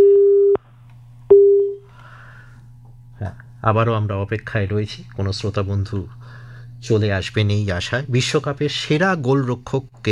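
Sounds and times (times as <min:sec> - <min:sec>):
telephone busy signal: 0:00.0 - 0:00.6, 0:01.3 - 0:01.8
faint constant hum: 0:00.0 - 0:10.1
speech: 0:03.6 - 0:10.1.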